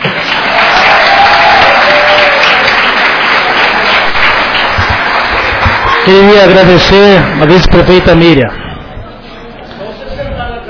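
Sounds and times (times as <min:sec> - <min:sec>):
audience applause at a city council session: 0:00.0 - 0:08.4
speech: 0:06.1 - 0:08.6.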